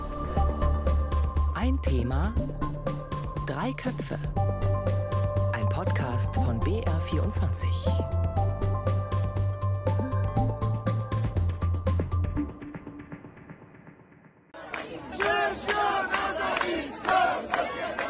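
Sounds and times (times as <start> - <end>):
music: 0.0 - 14.5
speech: 1.6 - 2.7, 3.5 - 4.7, 5.8 - 8.6
large crowd of protesters in Iran chanting a slogan: 14.6 - 18.0.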